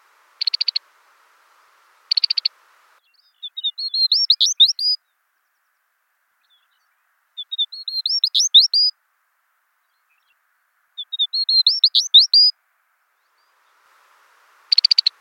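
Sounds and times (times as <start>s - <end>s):
Smith's longspur calling: 0.0s - 5.0s, 6.4s - 8.9s, 11.0s - 12.5s, 13.2s - 15.1s.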